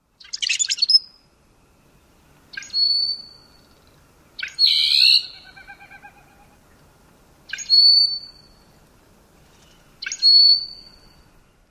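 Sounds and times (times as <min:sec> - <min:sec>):
rusty blackbird singing: 0:00.2 - 0:01.2, 0:02.5 - 0:06.8, 0:07.5 - 0:08.8, 0:09.7 - 0:11.7.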